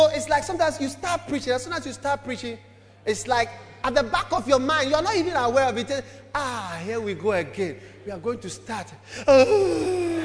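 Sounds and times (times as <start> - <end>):
speech: 0.3 - 10.2
person giving a drawn-out yawn: 9.2 - 10.2.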